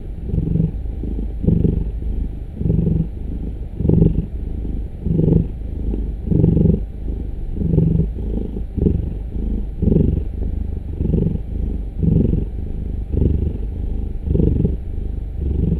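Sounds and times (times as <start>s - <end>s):
cat purring: 0.0s - 15.7s.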